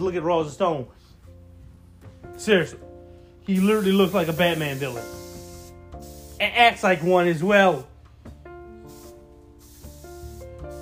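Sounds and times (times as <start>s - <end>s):
speech: 0.0s - 1.1s, 2.3s - 5.2s, 6.4s - 7.9s
aerosol can spraying a couch: 3.5s - 10.7s.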